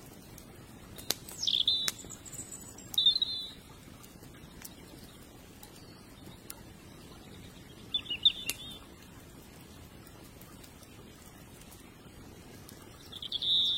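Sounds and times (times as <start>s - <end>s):
faint clicks: 0.3s - 3.2s, 3.8s - 6.6s, 8.4s - 13.3s
birdsong with high chirps: 0.8s - 13.7s.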